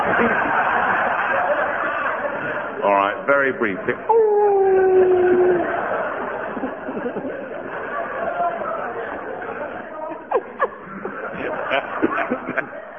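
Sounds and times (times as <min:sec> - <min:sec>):
laughter: 0:00.0 - 0:12.9
people chattering and snickering quietly: 0:00.0 - 0:12.9
speech: 0:03.5 - 0:04.4
man howling like a wolf: 0:04.1 - 0:05.7.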